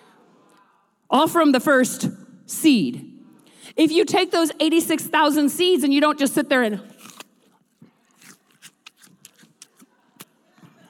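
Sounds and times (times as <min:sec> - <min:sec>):
speech: 0:01.1 - 0:06.9
person chewing an apple with mouth open: 0:06.9 - 0:10.8.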